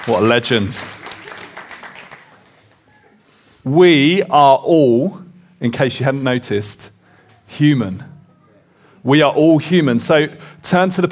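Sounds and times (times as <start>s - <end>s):
speech: 0.0s - 1.0s, 3.6s - 8.1s, 9.0s - 11.0s
audience applause: 0.0s - 3.2s.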